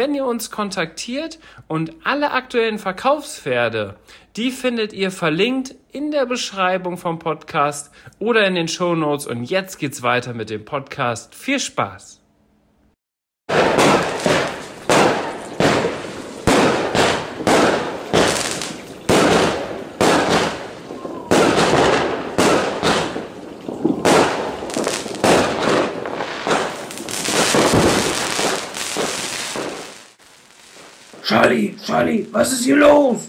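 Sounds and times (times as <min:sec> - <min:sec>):
speech: 0:00.0 - 0:12.2, 0:32.0 - 0:33.2
New Year's fireworks exploding: 0:13.5 - 0:33.2.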